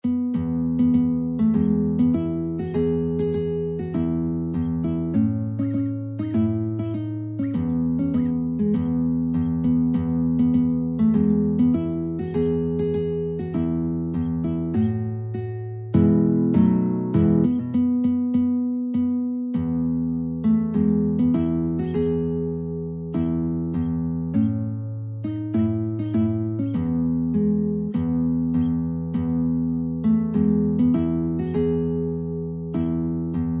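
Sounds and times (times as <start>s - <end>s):
guitar playing a hymn: 0.0s - 33.5s.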